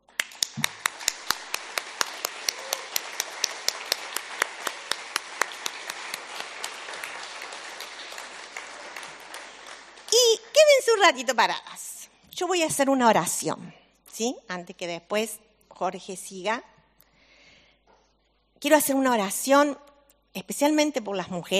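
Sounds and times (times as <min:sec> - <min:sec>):
crowd applauding for the women: 0:00.0 - 0:10.6
speech: 0:11.0 - 0:16.7, 0:18.6 - 0:21.5.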